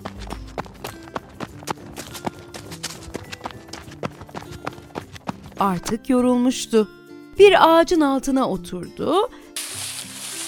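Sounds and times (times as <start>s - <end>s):
quick running footsteps: 0.0s - 5.9s
speech: 5.6s - 9.4s.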